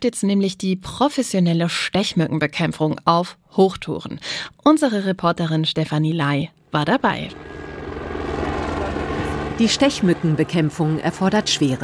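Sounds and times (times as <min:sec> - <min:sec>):
speech: 0:00.0 - 0:07.6, 0:09.6 - 0:11.8
helicopter rotor thudding while landing: 0:06.8 - 0:11.8.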